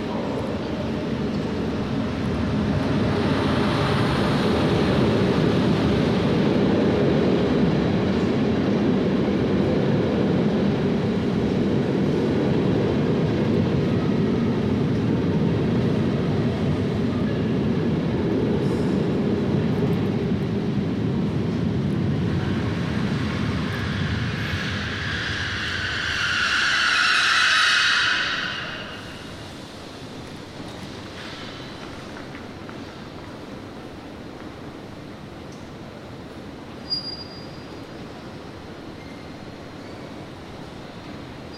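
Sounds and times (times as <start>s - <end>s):
train rumbling past a station platform: 0.0s - 41.5s
train squealing: 22.4s - 30.0s, 36.8s - 40.4s.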